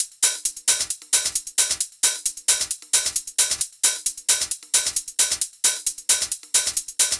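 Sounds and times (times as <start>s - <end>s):
thin house hi-hat: 0.0s - 7.1s.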